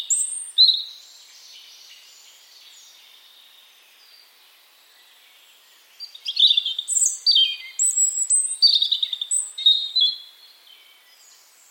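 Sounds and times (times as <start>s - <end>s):
European robin song: 0.0s - 11.6s.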